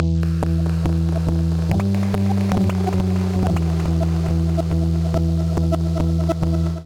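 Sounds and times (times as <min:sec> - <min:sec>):
sub bass in E minor: 0:00.0 - 0:06.8
percussion: 0:00.1 - 0:06.8
sound effects: 0:00.2 - 0:06.8.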